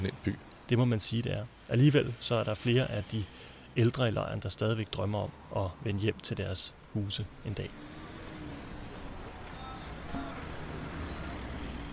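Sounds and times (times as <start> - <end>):
speech: 0.0 - 7.9
cars rushing past on a road: 7.3 - 11.9.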